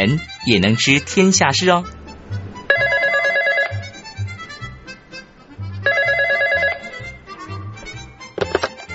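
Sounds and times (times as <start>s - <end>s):
speech: 0.0s - 2.0s
soft rhythmic music bed: 0.0s - 8.9s
telephone ringing in long trilling bursts: 2.7s - 4.4s, 5.8s - 7.3s.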